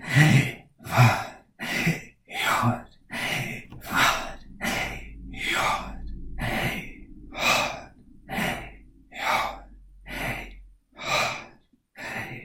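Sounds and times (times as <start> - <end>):
slow breathing in and out: 0.0 - 12.4
low hum: 2.5 - 11.5.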